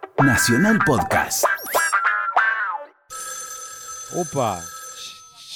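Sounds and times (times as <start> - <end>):
speech: 0.2 - 1.8, 4.1 - 4.7
electronic phone ringtone with sliding bouncy tones: 3.1 - 5.5.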